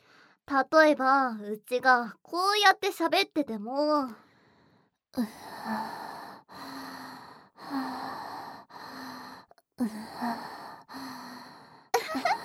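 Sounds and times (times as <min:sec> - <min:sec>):
girl breathing softly and slowly: 0:00.0 - 0:00.4, 0:04.1 - 0:11.9
speech: 0:00.5 - 0:04.2, 0:05.2 - 0:06.0.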